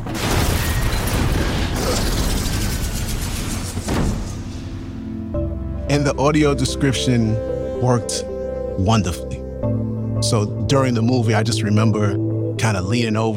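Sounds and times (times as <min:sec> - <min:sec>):
cinematic car crash into a helicopter: 0:00.1 - 0:05.0
cinematic explosion: 0:00.1 - 0:05.1
speech: 0:06.0 - 0:13.3.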